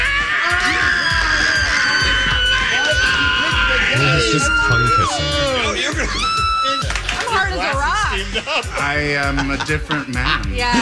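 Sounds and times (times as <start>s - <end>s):
crowd of people screaming and shrieking excitedly: 0.0s - 7.6s
laughter: 2.6s - 10.8s
speech: 8.4s - 10.8s.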